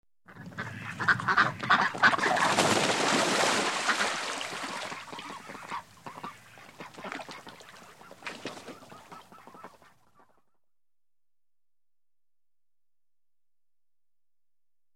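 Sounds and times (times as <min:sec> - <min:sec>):
ducks quacking: 0:00.3 - 0:02.6, 0:03.6 - 0:10.5
ducks swimming in water: 0:00.3 - 0:10.6.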